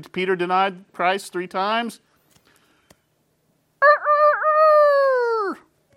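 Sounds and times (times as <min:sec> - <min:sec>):
speech: 0:00.0 - 0:02.1
rooster crowing: 0:03.8 - 0:05.7.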